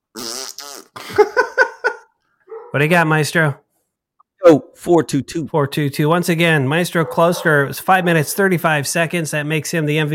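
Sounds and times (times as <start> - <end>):
fart noise: 0.1 - 1.0
speech: 1.0 - 1.4, 2.7 - 3.6, 4.4 - 10.1
laughter: 1.0 - 2.1.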